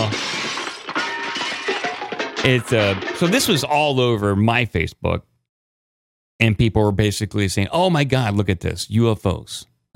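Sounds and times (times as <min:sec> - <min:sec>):
crash sound effect with glass shattering: 0:00.0 - 0:03.9
speech: 0:02.4 - 0:05.3, 0:06.4 - 0:09.9.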